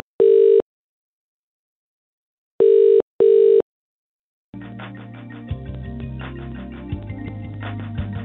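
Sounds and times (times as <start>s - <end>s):
telephone line beeps as a call to a helpline is cut off: 0.2s - 0.6s, 2.6s - 3.6s.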